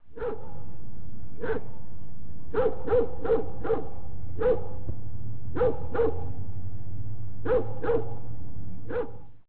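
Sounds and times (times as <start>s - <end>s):
steady low hum: 0.0s - 9.4s
dog barking: 0.1s - 0.6s, 1.4s - 1.7s, 2.5s - 4.8s, 5.6s - 6.3s, 7.4s - 8.2s, 8.9s - 9.3s.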